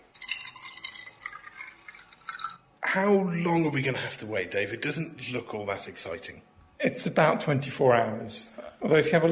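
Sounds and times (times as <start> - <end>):
white vinegar poured into a jar: 0.0 - 2.8
speech: 2.9 - 9.3.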